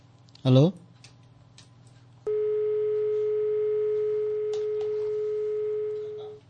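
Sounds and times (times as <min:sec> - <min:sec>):
speech: 0:00.4 - 0:00.8
steady electronic phone tone after a call-in line disconnects: 0:02.3 - 0:06.4.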